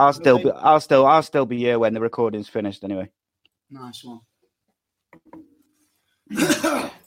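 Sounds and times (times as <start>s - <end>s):
speech: 0.0s - 4.3s, 6.3s - 7.0s
loud harsh rasping throat clearing: 6.3s - 7.0s.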